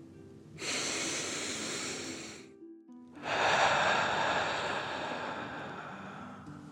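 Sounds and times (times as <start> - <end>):
fuller exhale through the mouth: 0.6 - 2.4, 3.2 - 6.6
long inhale through the nose: 0.6 - 2.5, 3.2 - 6.6.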